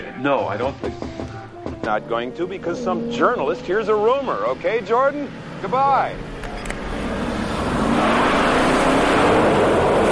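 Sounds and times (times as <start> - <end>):
speech: 0.2 - 1.2, 1.8 - 6.3
Dodge Charger car driving up with rumbling engine roar: 2.3 - 10.0.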